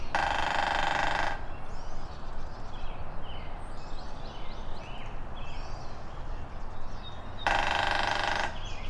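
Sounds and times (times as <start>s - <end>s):
northern flicker drumming: 0.1s - 1.5s, 7.4s - 8.7s.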